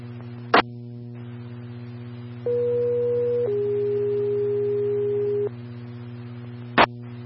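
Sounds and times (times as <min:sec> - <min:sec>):
constant low hum: 0:00.0 - 0:07.2
two-tone test signal on a medic unit's radio channel: 0:02.5 - 0:05.5.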